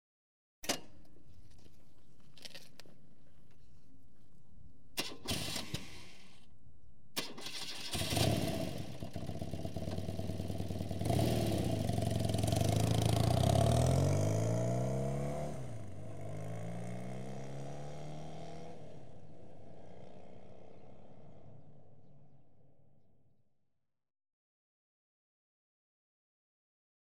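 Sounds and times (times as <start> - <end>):
BMW engine false start: 5.0 - 6.4, 7.2 - 9.5
BMW motorcycle driving off: 7.4 - 22.0.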